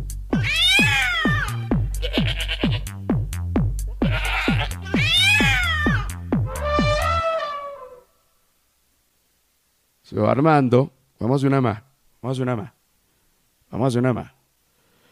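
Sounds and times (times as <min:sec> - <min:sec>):
thumping dance beat: 0:00.1 - 0:07.2
cat meows chopped into a dance beat: 0:00.3 - 0:02.7, 0:04.0 - 0:08.0
drawn-out cat yowl: 0:00.4 - 0:01.6, 0:04.0 - 0:08.1
speech: 0:10.2 - 0:12.8, 0:13.7 - 0:14.4.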